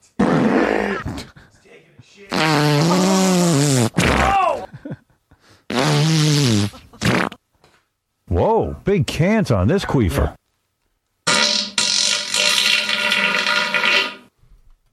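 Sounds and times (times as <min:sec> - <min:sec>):
loud buzzy farts: 0:00.2 - 0:01.3, 0:02.3 - 0:04.3, 0:05.7 - 0:07.4, 0:11.3 - 0:14.3
speech: 0:08.9 - 0:10.4.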